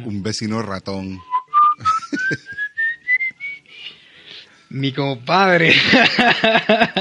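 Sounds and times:
speech: 0.0 - 2.6, 4.7 - 6.9
person whistling a thin high eerie tone: 1.2 - 3.8
laughter: 1.8 - 2.7, 5.7 - 6.9.

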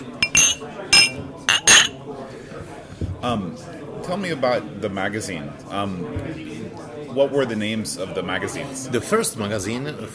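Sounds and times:
low murmur of voices in the room: 0.0 - 10.1
glasses clinking in a toast: 0.2 - 2.0
speech: 3.2 - 10.1.

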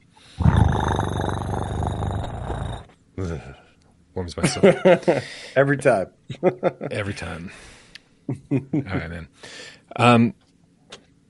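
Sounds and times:
human voice imitating a cat purring: 0.4 - 2.9
speech: 4.2 - 10.4.

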